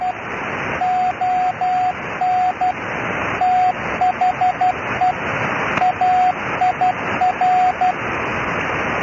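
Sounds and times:
shortwave radio static hiss: 0.0 - 9.0
faint CW beeps from a shortwave station: 0.8 - 2.8, 3.4 - 5.2, 5.8 - 8.0.

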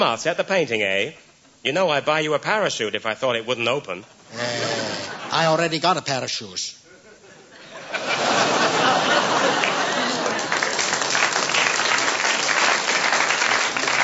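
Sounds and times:
speech: 0.0 - 4.7, 5.4 - 6.8
audience chuckling: 4.3 - 5.4, 6.9 - 11.0
live audience applause: 8.2 - 14.0.

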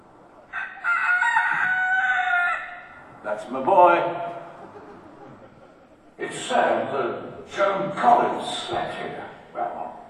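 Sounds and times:
rooster crowing among chickens in the garden grounds of a country hall: 0.5 - 3.1
speech: 3.4 - 4.4, 6.2 - 9.7
laughter: 4.4 - 6.6.

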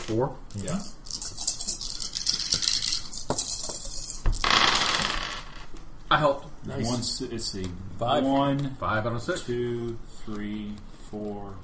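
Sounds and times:
speech: 0.1 - 1.0, 6.1 - 11.6
six dice clattering across a hard surface: 1.1 - 5.6.

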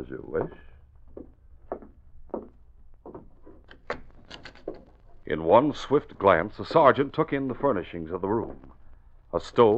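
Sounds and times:
speech: 0.0 - 1.3, 5.3 - 8.7, 9.3 - 9.7
wooden door creaking as it is opened: 2.4 - 5.2.

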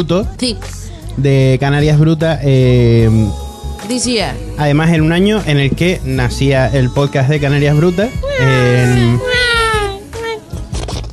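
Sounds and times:
speech: 0.0 - 9.6
newborn baby crying: 8.1 - 10.4.

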